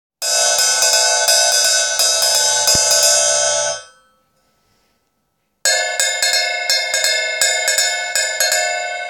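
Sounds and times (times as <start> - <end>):
drums recorded from bottom with CX500: 0.2 - 3.9, 5.7 - 8.9.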